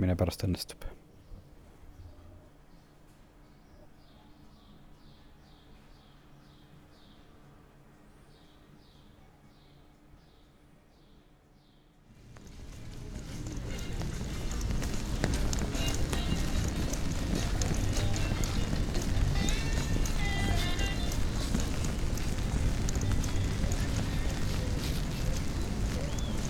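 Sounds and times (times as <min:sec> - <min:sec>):
speech: 0:00.0 - 0:01.0
spring rain in a city pattering on an umbrella: 0:12.1 - 0:26.4.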